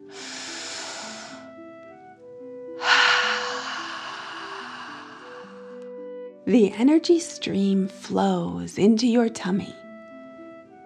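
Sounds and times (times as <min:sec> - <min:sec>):
forceful exhale through mouth: 0:00.0 - 0:01.5, 0:02.8 - 0:05.8
deep breath in through nose: 0:00.0 - 0:01.6, 0:02.8 - 0:05.8
soft steady music: 0:00.0 - 0:10.8
speech: 0:06.5 - 0:09.8.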